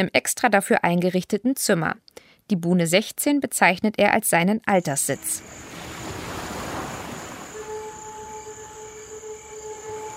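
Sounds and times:
speech: 0.0s - 5.7s
faint steady high tones: 4.8s - 10.1s
ocean surf breaking on a North Sea island beach at a groyne: 5.1s - 10.1s
gusty wind-like rushing: 5.2s - 7.7s.

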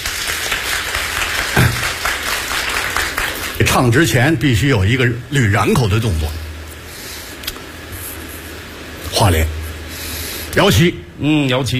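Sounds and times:
audience applause at a live crosstalk comedy show: 0.0s - 3.8s
speech: 3.8s - 6.4s, 9.2s - 9.6s, 10.6s - 11.7s.

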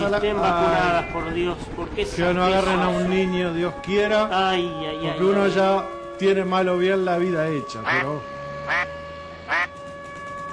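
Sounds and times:
speech: 0.0s - 9.0s
duck quacking: 7.8s - 8.1s, 8.7s - 8.9s, 9.5s - 9.7s.

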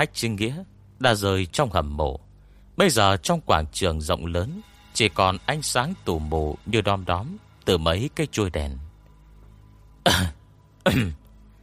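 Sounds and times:
speech: 0.0s - 2.2s, 2.8s - 8.8s, 10.0s - 11.2s
person clearing throat: 10.0s - 11.3s.

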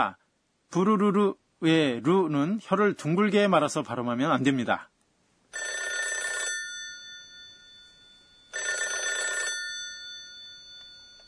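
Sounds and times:
speech: 0.0s - 4.9s
metallic trilling telephone bell ringing: 5.5s - 11.2s.

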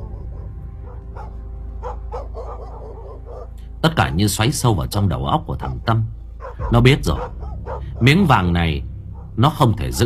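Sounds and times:
dogs barking in a village at night: 0.0s - 4.5s, 5.5s - 8.4s, 9.1s - 9.4s
speech: 3.8s - 7.4s, 8.0s - 10.0s.

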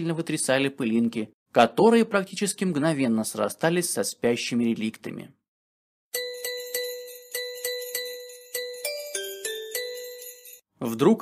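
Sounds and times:
speech: 0.0s - 5.4s, 10.8s - 11.2s
small bells ringing out in the street: 6.2s - 10.7s.

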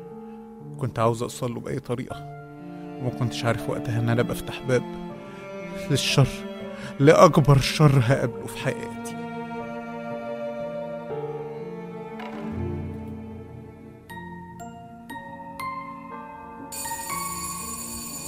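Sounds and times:
speech: 0.8s - 2.4s, 3.0s - 5.1s, 5.7s - 9.2s
sustained droning musical background: 2.4s - 18.2s
doorbell chiming: 16.7s - 18.2s.

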